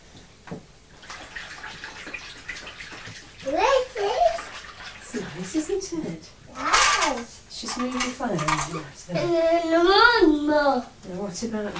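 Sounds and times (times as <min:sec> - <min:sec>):
speech: 0:00.5 - 0:00.7, 0:05.5 - 0:11.7
water pouring into a bubble bath: 0:00.9 - 0:07.3
child's faint high voice: 0:03.4 - 0:04.5, 0:06.5 - 0:07.3, 0:09.1 - 0:11.0.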